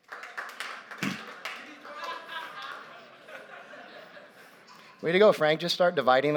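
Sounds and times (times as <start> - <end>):
crowd clapping: 0.0 - 3.4
crowd cheering: 0.0 - 4.2
laughter: 1.0 - 5.0
speech: 5.0 - 6.3.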